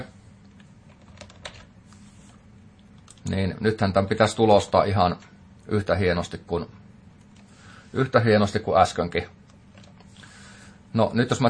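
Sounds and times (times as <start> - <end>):
faint typing on a computer keyboard: 0.9 - 1.7
constant low hiss: 1.7 - 11.4
speech: 3.3 - 6.8, 7.9 - 9.4, 10.9 - 11.4.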